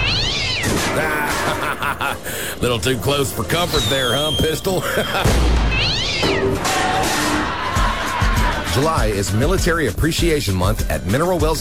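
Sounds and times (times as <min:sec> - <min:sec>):
cat meowing with a drawn-out wavering yowl: 0:00.0 - 0:01.6, 0:05.7 - 0:07.0
laughter: 0:00.8 - 0:02.7, 0:04.5 - 0:05.5, 0:06.5 - 0:09.0
speech: 0:01.9 - 0:07.3, 0:08.7 - 0:11.5.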